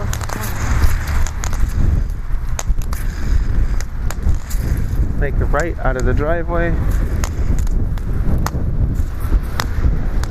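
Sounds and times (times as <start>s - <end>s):
sharp ticks: 0.0s - 6.2s, 6.9s - 8.6s
wind buffeting the microphone outdoors by a busy street: 0.0s - 10.2s
speech: 5.3s - 7.1s.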